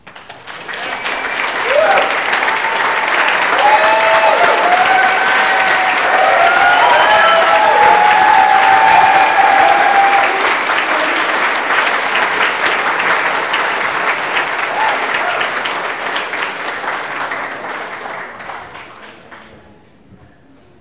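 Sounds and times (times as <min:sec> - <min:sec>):
large audience applause: 0:00.0 - 0:19.5
scattered cheers and whoops: 0:00.8 - 0:11.3, 0:14.6 - 0:15.6.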